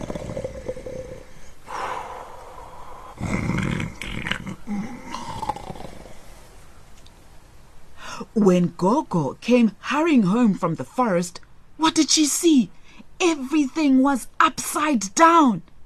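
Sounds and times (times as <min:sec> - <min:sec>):
loud snoring: 0:00.0 - 0:06.3
speech: 0:08.4 - 0:15.7.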